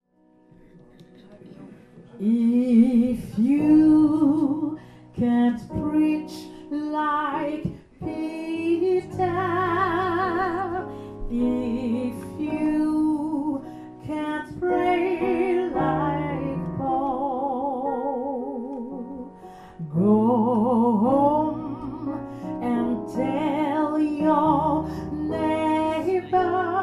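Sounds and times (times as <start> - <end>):
gospel music: 0.3 - 26.8.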